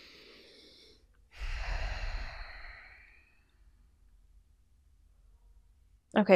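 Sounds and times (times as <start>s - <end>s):
deep breath in during an energy reading: 0.0s - 3.9s.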